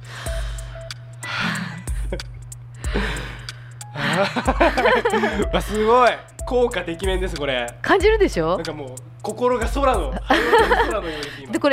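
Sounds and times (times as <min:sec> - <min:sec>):
slow deep breaths: 0:00.0 - 0:02.1, 0:02.8 - 0:04.3, 0:11.0 - 0:11.5
steady low hum: 0:00.0 - 0:11.6
speech: 0:02.1 - 0:02.3, 0:04.2 - 0:11.7
laughter: 0:04.0 - 0:06.1, 0:10.1 - 0:11.5.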